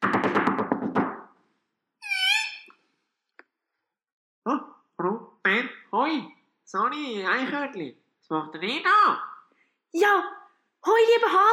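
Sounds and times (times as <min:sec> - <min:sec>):
knocking on a door: 0:00.0 - 0:01.2
speech: 0:04.5 - 0:09.3, 0:09.9 - 0:11.5.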